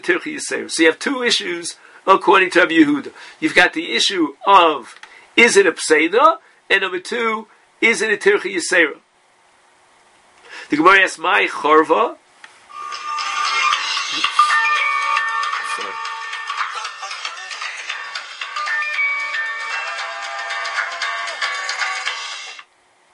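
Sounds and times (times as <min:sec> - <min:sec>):
speech: 0:00.0 - 0:09.0, 0:10.7 - 0:12.2
phone ringtone with bright busy electronic melody: 0:12.7 - 0:22.6.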